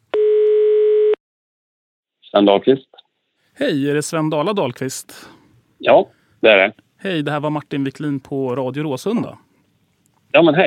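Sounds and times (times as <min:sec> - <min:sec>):
telephone ringback tone while phoning: 0:00.2 - 0:01.2
speech: 0:02.3 - 0:03.0, 0:03.6 - 0:09.4, 0:10.3 - 0:10.6.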